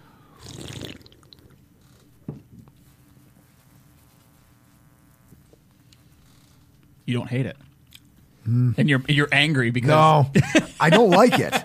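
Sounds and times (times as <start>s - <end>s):
slurping and gulping a swig of beer: 0.3s - 2.1s
speech: 7.1s - 7.7s, 8.5s - 11.6s
laughter: 10.3s - 11.6s.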